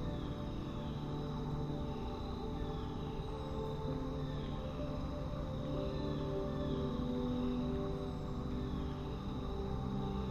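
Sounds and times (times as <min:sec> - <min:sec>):
faint high insect-like drone: 0:00.0 - 0:10.2
soft piano music: 0:00.0 - 0:10.2.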